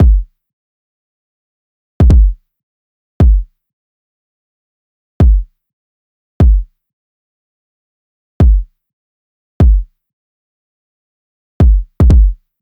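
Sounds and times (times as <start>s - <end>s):
kick drum loop at 150 BPM: 0.0s - 0.3s, 2.0s - 2.4s, 3.2s - 3.5s, 5.2s - 5.5s, 6.4s - 6.7s, 8.4s - 8.7s, 9.6s - 9.9s, 11.6s - 12.4s.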